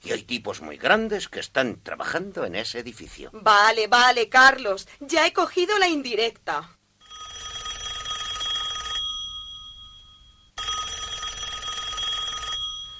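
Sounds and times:
speech: 0:00.1 - 0:06.8
mobile phone ringing with bright electronic trilling: 0:07.0 - 0:12.9.

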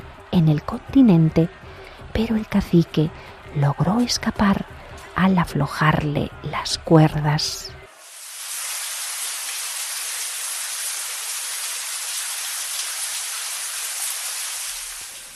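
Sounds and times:
speech: 0:00.4 - 0:01.6, 0:02.2 - 0:07.8
steady rain falling: 0:07.9 - 0:15.3.

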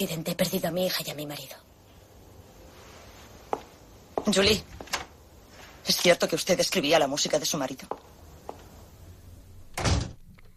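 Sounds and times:
speech: 0:00.0 - 0:01.7, 0:04.2 - 0:04.9, 0:05.9 - 0:08.2
door slamming shut: 0:09.7 - 0:10.3.

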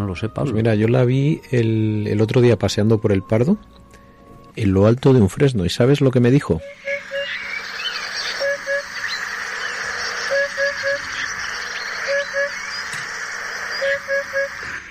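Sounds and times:
speech: 0:00.1 - 0:03.8, 0:04.6 - 0:06.9
Eurasian hoopoe calling: 0:06.6 - 0:14.9
constant hiss of noise: 0:06.6 - 0:14.9.

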